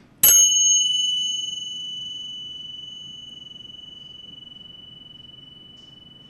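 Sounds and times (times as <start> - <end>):
tingsha cymbals of two small alloy discs struck in Buddha ceremony: 0.2 - 6.2.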